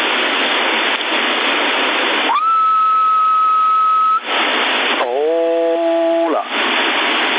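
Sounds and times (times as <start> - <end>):
CB radio static on an AM channel: 0.0 - 7.3
CB radio whistled carrier tone: 2.3 - 4.3.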